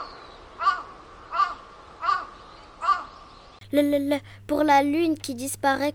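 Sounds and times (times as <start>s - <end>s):
crow cawing from a branch: 0.6s - 3.2s
speech: 3.7s - 5.9s.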